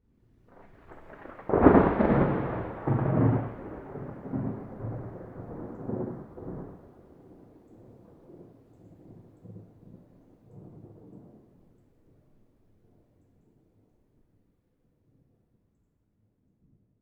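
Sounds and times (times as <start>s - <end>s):
medium thunder clap: 0.5s - 7.1s.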